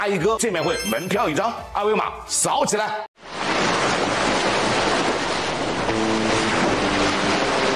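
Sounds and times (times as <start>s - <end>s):
speech: 0.0s - 3.3s
ocean waves and surf: 3.2s - 7.7s.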